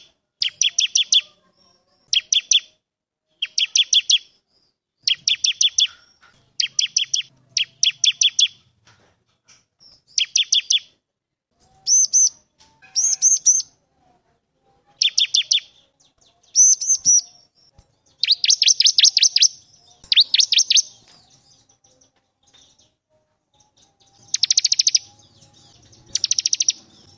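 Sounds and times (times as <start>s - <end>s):
bar-winged prinia singing vigorously: 0.0s - 8.6s, 9.8s - 11.0s, 11.8s - 13.8s, 15.0s - 23.0s, 23.6s - 27.1s.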